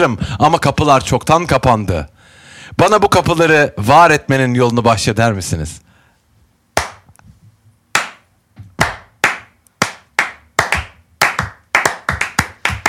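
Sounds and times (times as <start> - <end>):
speech: 0.0 - 2.1, 2.7 - 5.9
sharp hand claps from one person: 6.8 - 7.1, 7.9 - 12.8.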